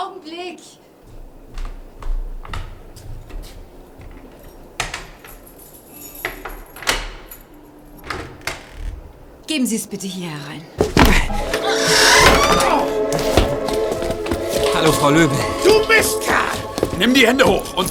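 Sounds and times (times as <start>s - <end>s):
speech: 0.2s - 1.2s, 9.5s - 12.0s, 14.9s - 16.4s, 17.0s - 17.9s
door soft creaking as it is eased open: 2.1s - 9.4s, 10.8s - 13.6s
key and latch clicking and rattling in a door: 4.2s - 8.0s.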